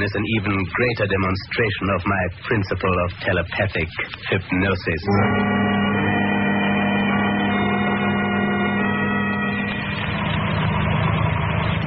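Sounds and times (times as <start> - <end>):
speech: 0.0 - 5.7
car engine idling and pulling over to the curb: 5.4 - 11.8.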